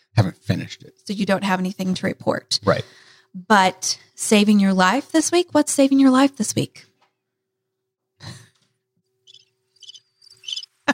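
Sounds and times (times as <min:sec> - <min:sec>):
speech: 0:00.2 - 0:06.9
short high-pitched cricket chirps: 0:09.2 - 0:10.7.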